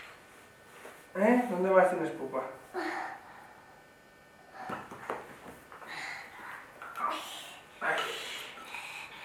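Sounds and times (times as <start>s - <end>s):
speech: 1.2s - 2.6s
young child imitating airplane motor with mouth: 7.0s - 9.2s.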